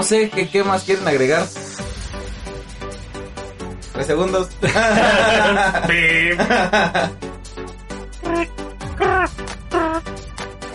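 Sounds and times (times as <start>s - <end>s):
speech: 0.0s - 1.6s, 4.0s - 7.3s, 8.3s - 8.6s
person chuckling: 5.0s - 7.0s, 8.2s - 10.0s
person imitating a cricket chirp with their voice: 8.2s - 10.0s.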